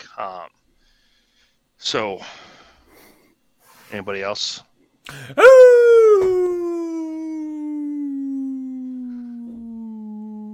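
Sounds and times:
speech: 0.2s - 0.6s, 1.8s - 2.5s, 3.9s - 5.8s
breathy sound: 5.1s - 10.5s
person imitating a wolf howl: 5.4s - 10.5s.

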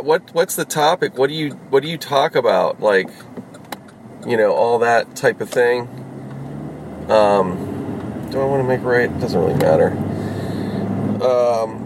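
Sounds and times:
speech: 0.0s - 3.4s, 4.2s - 6.0s, 7.1s - 7.7s, 8.3s - 10.0s, 11.2s - 11.8s
car interior road and engine rumble while driving: 0.0s - 11.8s.

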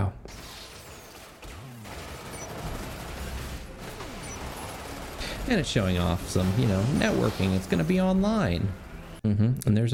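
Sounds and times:
gunfire in an online zombie shooter video game: 0.3s - 8.0s
speech: 5.5s - 9.9s.

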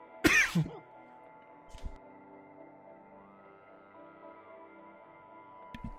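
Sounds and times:
throat-clearing cough: 0.2s - 0.8s.

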